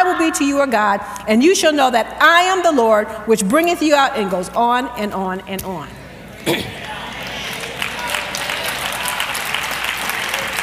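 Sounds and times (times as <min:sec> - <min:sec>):
speech: 0:00.3 - 0:06.8
large audience clapping: 0:06.6 - 0:10.6.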